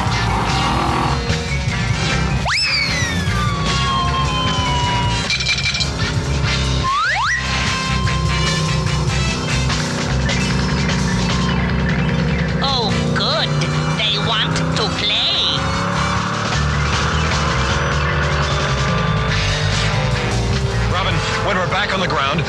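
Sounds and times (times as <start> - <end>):
car engine roaring in a fast chase: 0.0 - 22.4
voices: 12.6 - 15.7.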